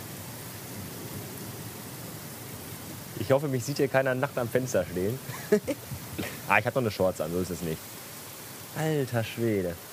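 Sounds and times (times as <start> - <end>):
heavy thunderstorm downpour at night: 0.0 - 9.9
low continuous thunder rumble: 0.6 - 3.7
speech: 3.2 - 8.0, 8.7 - 9.9
laughter: 5.2 - 6.4.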